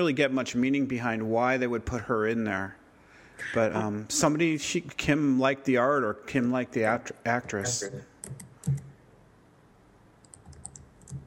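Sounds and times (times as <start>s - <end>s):
speech: 0.0s - 2.8s, 3.4s - 8.9s
typing on a computer keyboard: 8.2s - 8.9s, 10.2s - 11.2s.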